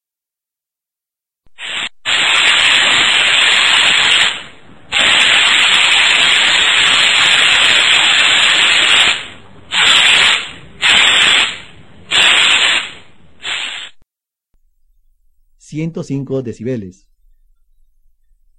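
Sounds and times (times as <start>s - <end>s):
paint spray gun hissing in bursts: 1.5s - 14.0s
speech: 15.9s - 17.1s.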